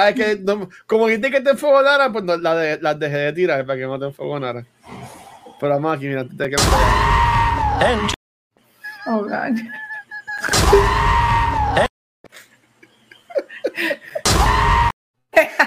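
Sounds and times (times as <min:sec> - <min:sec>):
speech: 0:00.0 - 0:07.2, 0:07.8 - 0:08.2, 0:09.0 - 0:09.8
goats screaming: 0:06.6 - 0:08.2, 0:10.4 - 0:11.9, 0:14.2 - 0:14.9
people chuckling: 0:09.5 - 0:10.6, 0:12.3 - 0:14.3.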